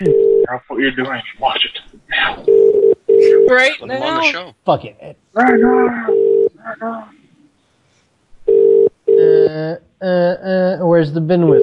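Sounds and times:
ringback tone of an outgoing phone call: 0.0s - 0.4s, 2.5s - 3.5s, 5.4s - 6.5s, 8.5s - 9.5s
speech: 0.8s - 2.5s, 3.5s - 6.2s, 6.8s - 7.2s, 9.5s - 11.6s.

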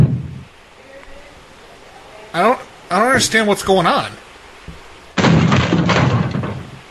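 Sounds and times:
speech: 2.3s - 4.2s
kicking and banging on a door: 5.2s - 6.8s.

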